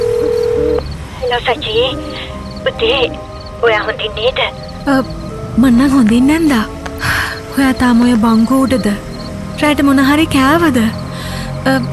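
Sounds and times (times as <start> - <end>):
telephone tone as someone dials a number: 0.0 - 4.6
speech: 1.3 - 11.0, 11.6 - 11.9.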